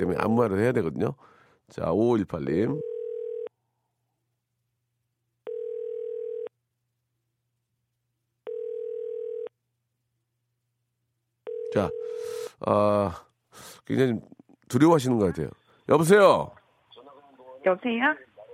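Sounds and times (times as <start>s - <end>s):
speech: 0.0s - 2.9s, 11.7s - 16.6s, 17.6s - 18.3s
telephone ringback tone while call connects: 2.8s - 3.5s, 5.5s - 6.5s, 8.5s - 9.5s, 11.5s - 12.4s.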